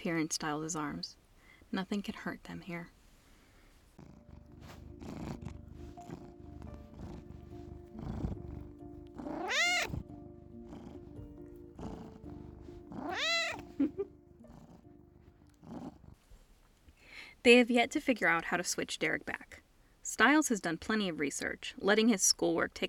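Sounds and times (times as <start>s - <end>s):
speech: 0.0s - 3.0s, 17.4s - 22.8s
cat purring: 2.4s - 16.6s.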